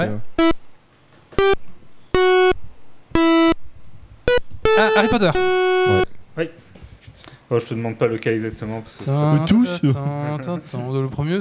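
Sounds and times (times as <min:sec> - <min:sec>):
speech: 0:00.0 - 0:00.5, 0:05.0 - 0:06.7, 0:07.5 - 0:11.3
8-bit chiptune melody in buzzy square-wave tones: 0:00.0 - 0:00.8, 0:01.4 - 0:06.2.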